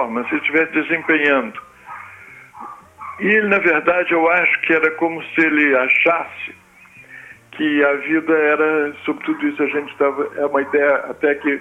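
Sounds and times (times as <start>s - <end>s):
speech: 0.0s - 1.7s, 3.2s - 6.6s, 7.6s - 11.5s
dog barking: 0.0s - 4.8s, 8.0s - 11.5s.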